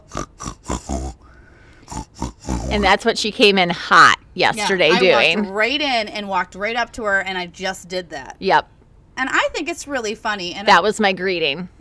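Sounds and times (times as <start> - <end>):
person imitating snoring as a joking greeting: 0.0 - 3.1
speech: 2.7 - 11.7
laughter: 4.6 - 5.6.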